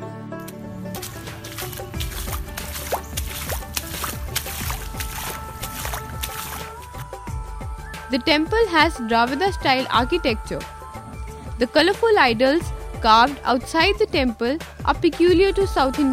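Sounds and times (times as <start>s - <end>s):
feet sloshing through shallow rainwater in front of a temple: 0.5s - 7.2s
speech: 8.1s - 10.8s, 11.6s - 16.1s.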